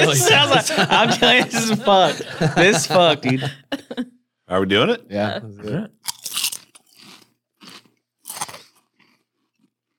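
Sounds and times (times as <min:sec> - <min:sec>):
laughter: 0:00.0 - 0:04.1
speech: 0:00.1 - 0:03.8, 0:04.5 - 0:06.0
person biting and chewing pizza-flavoured potato crisps: 0:06.1 - 0:09.9.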